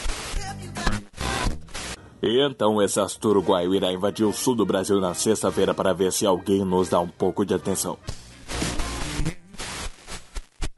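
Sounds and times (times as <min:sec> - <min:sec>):
radio interference static: 0:00.0 - 0:02.0, 0:08.1 - 0:10.7
speech: 0:02.2 - 0:08.2.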